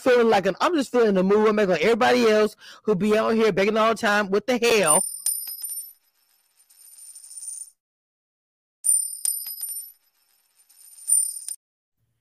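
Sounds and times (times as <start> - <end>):
speech: 0.0 - 5.2
coins clinking and jingling as they drop: 4.9 - 7.8, 8.9 - 11.6.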